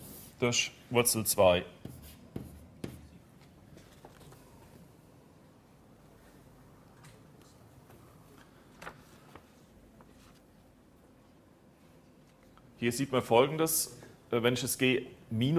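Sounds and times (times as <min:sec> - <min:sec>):
speech: 0:00.4 - 0:01.8, 0:12.8 - 0:15.5
handwriting of letters and formulas during a maths lecture: 0:01.8 - 0:03.2
writing taps during handwriting in a maths lecture: 0:01.8 - 0:03.2.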